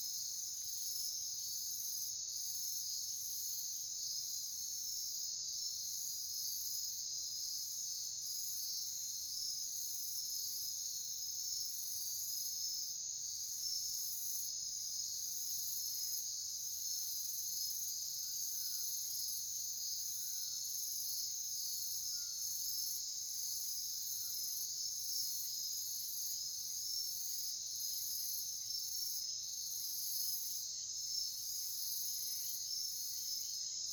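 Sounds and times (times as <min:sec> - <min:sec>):
chorus of crickets and insects at night near a cave entrance: 0:00.0 - 0:33.9.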